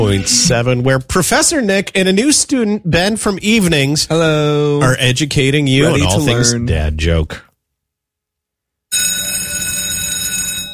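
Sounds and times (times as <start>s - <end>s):
speech: 0.0s - 7.5s
school bell ringing: 8.9s - 10.7s.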